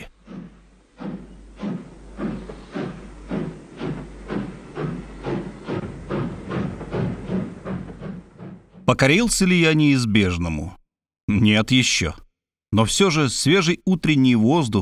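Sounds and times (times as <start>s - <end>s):
steam locomotive chuffing as it starts to move: 0.0s - 10.6s
speech: 8.9s - 10.8s, 11.4s - 14.7s.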